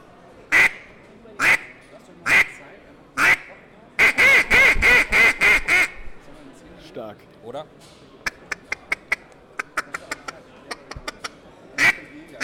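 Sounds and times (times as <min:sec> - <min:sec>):
duck call quacking: 0:00.5 - 0:00.8, 0:01.4 - 0:01.7, 0:02.3 - 0:02.5, 0:03.2 - 0:06.0, 0:08.3 - 0:11.2, 0:11.8 - 0:12.4
speech: 0:07.4 - 0:08.2.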